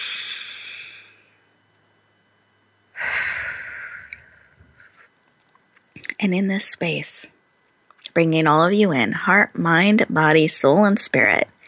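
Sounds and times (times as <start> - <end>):
person taking a deep breath during a stress-relief exercise: 0.0 - 1.2, 3.0 - 5.0
speech: 6.2 - 7.4, 8.2 - 11.6.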